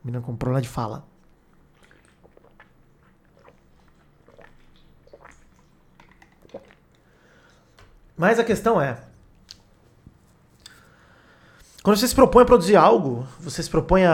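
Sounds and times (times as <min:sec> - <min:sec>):
speech: 0:00.0 - 0:01.1, 0:08.2 - 0:09.1, 0:11.8 - 0:14.1
small gulps of water: 0:01.2 - 0:08.2, 0:09.2 - 0:11.9
person sipping a drink of water: 0:01.3 - 0:08.1, 0:10.5 - 0:11.9.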